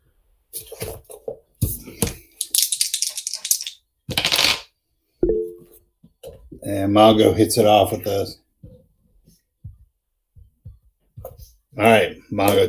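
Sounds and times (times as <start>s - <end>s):
dice tumbling and skittering across a hard surface: 2.4s - 4.7s
speech: 6.7s - 8.4s, 11.8s - 12.6s.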